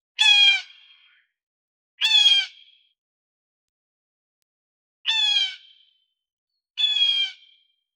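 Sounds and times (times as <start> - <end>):
eagle hawk crying when taking damage: 0.2 - 1.3, 2.0 - 2.9, 5.1 - 6.0, 6.8 - 7.7.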